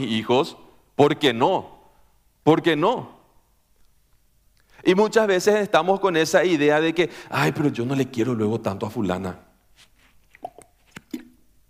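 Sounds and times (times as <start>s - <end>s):
speech: 0.0s - 1.8s, 2.4s - 3.2s, 4.8s - 9.4s
person sipping water with mouth clicks and gulps: 9.9s - 11.5s.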